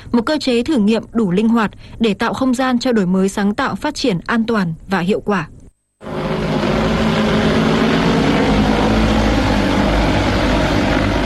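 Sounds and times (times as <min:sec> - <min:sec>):
speech: 0:00.1 - 0:06.2
delivery drone engine taking off: 0:06.0 - 0:11.2.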